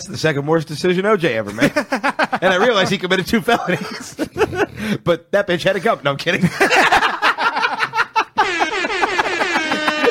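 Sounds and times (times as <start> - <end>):
speech: 0.0 - 6.9
choppy voices or laughter: 1.5 - 4.9, 6.4 - 10.1
brassy air horn sound effect blaring: 8.4 - 10.1.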